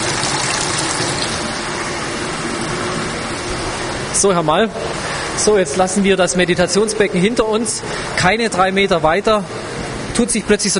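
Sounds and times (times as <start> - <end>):
warm water well over 30 degrees bubbling in a spa pool: 0.0 - 4.2
speech: 4.2 - 10.7.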